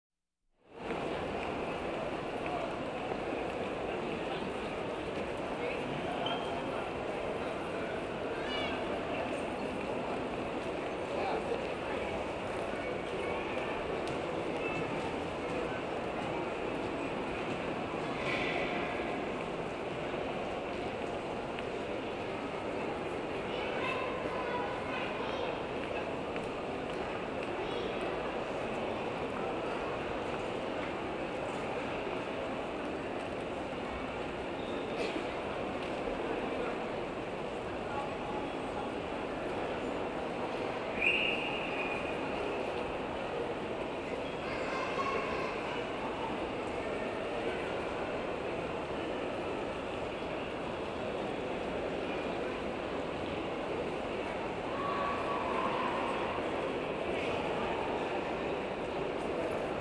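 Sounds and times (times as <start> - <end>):
city noise in a shopping arcade: 0.7 - 59.7.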